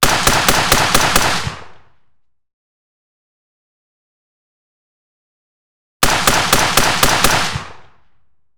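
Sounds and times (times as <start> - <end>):
HK 416 5.56mm rifle gunshots: 0.0 - 1.9, 6.0 - 8.0.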